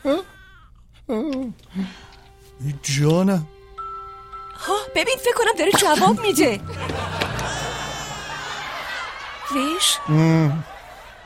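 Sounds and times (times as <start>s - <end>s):
speech: 2.8s - 3.6s, 5.0s - 7.0s, 9.5s - 10.7s
laughter: 5.8s - 11.2s
baby crying in wavering wails: 7.2s - 9.0s.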